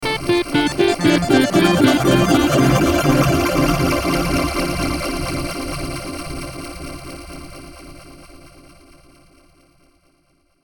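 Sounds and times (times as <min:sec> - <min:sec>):
logo digital beeps with shimmer: 0:00.1 - 0:04.6.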